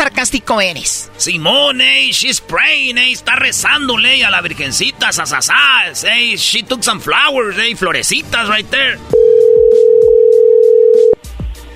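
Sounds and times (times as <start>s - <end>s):
speech: 0.2s - 9.2s
telephone tone during an unanswered call: 9.1s - 11.2s.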